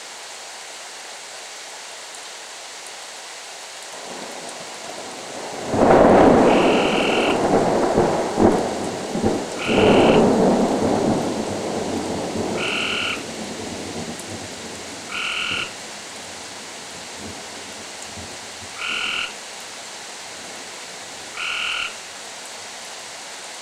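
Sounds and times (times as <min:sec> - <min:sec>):
frogs croaking: 0:04.0 - 0:22.6
thunder: 0:04.1 - 0:15.8.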